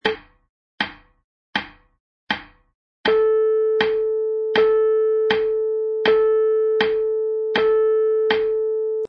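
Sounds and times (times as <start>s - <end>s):
MIDI piano half notes: 3.1s - 9.0s.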